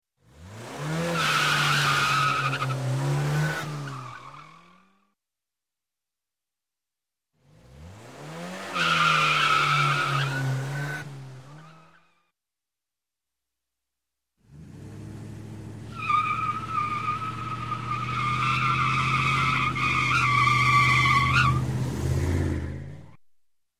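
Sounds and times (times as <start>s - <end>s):
car engine revving: 0.3s - 4.0s, 7.4s - 11.9s, 14.5s - 23.2s
car tires squealing: 0.6s - 5.0s, 7.8s - 12.2s, 15.6s - 23.2s.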